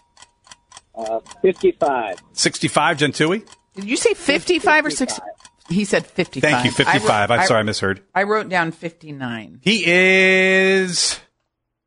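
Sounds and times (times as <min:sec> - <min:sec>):
game show countdown timer ticking: 0:00.0 - 0:09.0
speech: 0:01.0 - 0:11.2.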